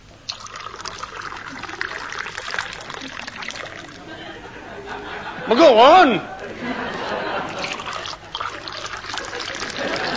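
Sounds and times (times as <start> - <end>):
gin being poured into a glass: 0.3 - 4.0, 7.5 - 10.1
laughter: 3.1 - 10.1
speech: 5.5 - 6.8.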